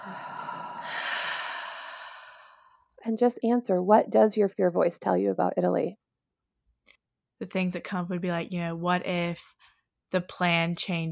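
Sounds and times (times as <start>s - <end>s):
person taking a slow deep breath in and exhaling: 0.0s - 2.9s
speech: 3.0s - 6.0s, 7.4s - 11.1s.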